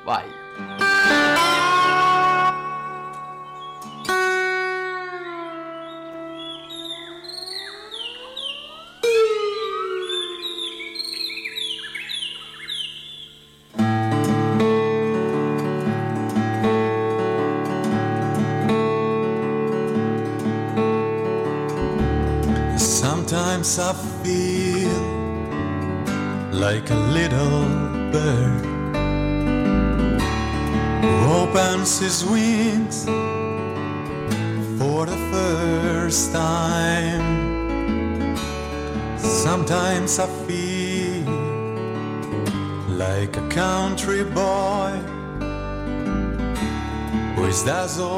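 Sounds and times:
song played on slide guitar: 0.0 - 48.1
speech: 0.1 - 0.9, 32.0 - 33.2, 39.5 - 40.8, 43.2 - 45.1, 47.5 - 48.1
band playing: 21.8 - 23.0.

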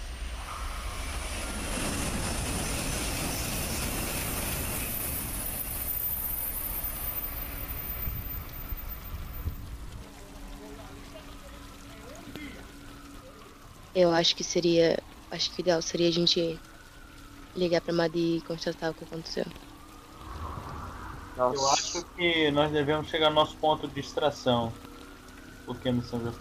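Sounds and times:
subway train rumbling past: 0.0 - 6.1, 20.2 - 21.6
speech: 14.0 - 16.7, 17.6 - 19.6, 21.4 - 24.9, 25.7 - 26.4.

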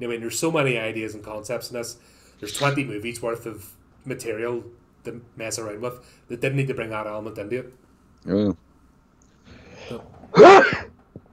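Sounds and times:
speech: 0.0 - 8.6, 9.9 - 10.9
sick person giving a harsh cough: 9.8 - 10.9.

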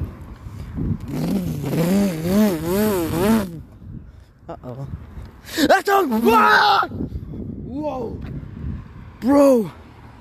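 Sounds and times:
speech: 1.0 - 1.8, 5.4 - 7.0, 7.8 - 8.3, 9.2 - 9.8
motorcycle engine revving: 1.0 - 3.6.

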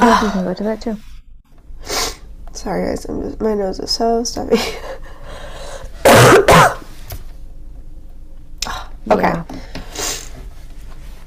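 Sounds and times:
speech: 0.1 - 1.1, 2.6 - 4.9, 9.1 - 9.6
person coughing harshly: 6.0 - 6.8.

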